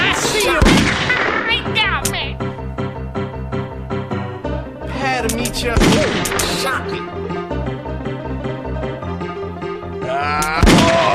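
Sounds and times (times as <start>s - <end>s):
gunshots set within a song: 0.0s - 2.2s, 5.7s - 6.7s, 10.4s - 11.1s
steady musical backing of a song: 0.0s - 11.1s.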